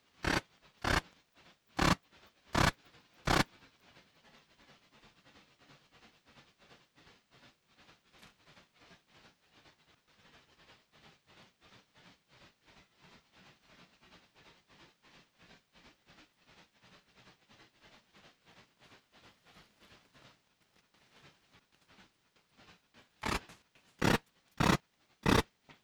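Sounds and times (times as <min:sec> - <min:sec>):
R poneli strophes through a heterodyne detector: 0:00.2 - 0:01.0, 0:23.2 - 0:23.4, 0:24.0 - 0:25.4.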